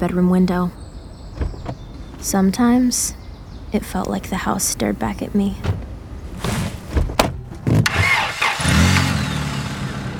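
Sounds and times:
speech: 0.0s - 0.8s, 2.2s - 5.8s
car engine starting as the car drives off from a house: 0.8s - 10.1s
sharp knocks: 5.6s - 8.2s.

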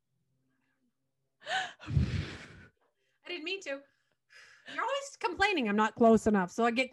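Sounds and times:
heavy breathing into a microphone: 1.5s - 3.2s
speech: 3.4s - 6.9s.

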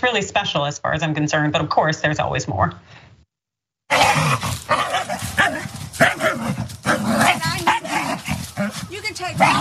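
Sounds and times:
speech: 0.0s - 3.1s
dog barking and yelping: 3.9s - 9.5s.

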